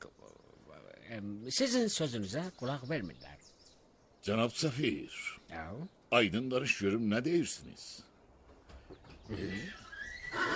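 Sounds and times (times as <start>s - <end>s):
speech: 1.1s - 3.5s, 4.2s - 8.1s, 9.3s - 10.5s
Iranian horse whinnying: 9.4s - 10.5s.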